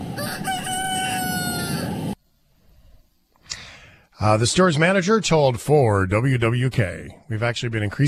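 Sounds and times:
rooster store mascot crowing: 0.0s - 2.2s
speech: 4.2s - 8.0s.

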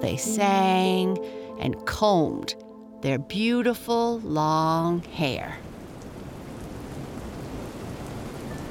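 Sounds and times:
speech: 0.0s - 5.7s
heavy rain beating against a window at night: 5.3s - 8.6s.

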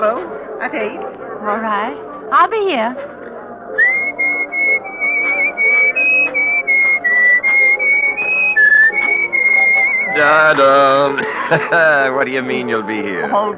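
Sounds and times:
speech: 0.0s - 3.9s, 10.2s - 13.5s
faint music: 0.0s - 13.5s
person whistling a melody: 3.8s - 11.9s
laughter: 9.9s - 13.5s.

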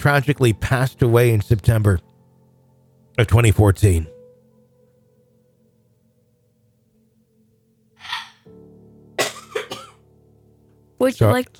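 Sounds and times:
speech: 0.0s - 2.1s, 3.2s - 4.1s, 11.0s - 11.5s
harsh coughs: 9.2s - 10.0s
person clearing throat with a breathy rasp: 9.2s - 10.0s.

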